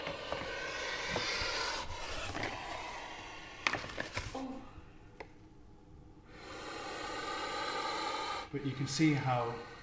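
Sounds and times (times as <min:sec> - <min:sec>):
snake hissing as its cage is opened: 0:00.0 - 0:03.7, 0:06.3 - 0:09.8
speech: 0:08.5 - 0:09.7.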